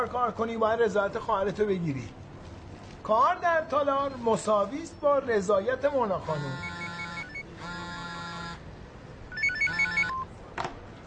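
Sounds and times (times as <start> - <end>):
speech: 0.0 - 2.2, 3.0 - 6.7
telephone ringing with trilling bell tones: 6.3 - 8.6, 9.3 - 10.3.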